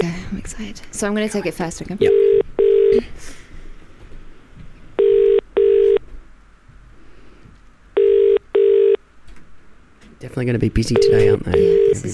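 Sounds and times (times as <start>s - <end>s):
speech: 0.0s - 3.4s, 10.4s - 12.1s
telephone ringback tone: 2.0s - 3.0s, 5.0s - 6.0s, 8.0s - 9.0s, 11.0s - 12.1s.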